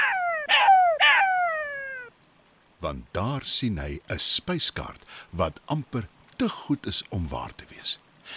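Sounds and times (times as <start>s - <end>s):
voice imitating a jackal's cheerful howl with yips: 0.0s - 2.1s
speech: 2.8s - 8.3s.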